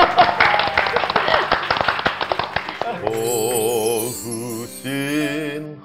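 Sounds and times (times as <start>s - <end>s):
several people clapping hands: 0.0s - 5.6s
single person singing a wavering melodic line: 2.8s - 5.7s.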